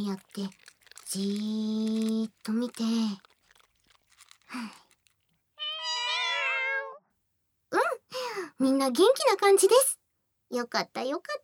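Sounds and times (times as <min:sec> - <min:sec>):
speech: 0:00.0 - 0:03.3, 0:04.5 - 0:04.8, 0:08.6 - 0:11.4
cat meowing: 0:05.6 - 0:07.0.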